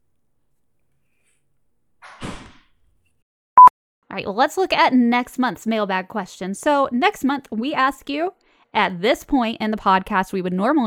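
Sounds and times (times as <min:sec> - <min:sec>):
door pushed shut: 0:02.0 - 0:02.9
speech: 0:04.2 - 0:10.8.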